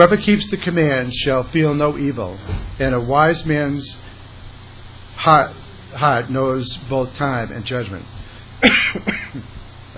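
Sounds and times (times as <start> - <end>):
speech: 0.0 - 4.0, 5.2 - 9.9
person clearing throat after breathing in dust: 8.6 - 9.9.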